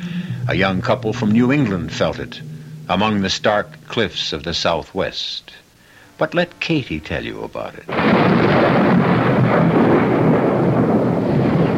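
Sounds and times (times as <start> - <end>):
thunder rolling and crashing during a night storm: 0.0 - 4.7, 7.9 - 11.7
faint rain hiss: 0.0 - 11.7
speech: 0.5 - 5.6, 6.2 - 8.8.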